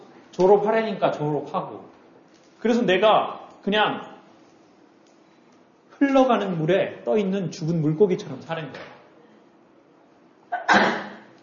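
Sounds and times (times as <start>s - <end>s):
speech: 0.4s - 2.0s, 2.6s - 4.1s, 6.0s - 8.9s
person sneezing: 10.5s - 11.3s.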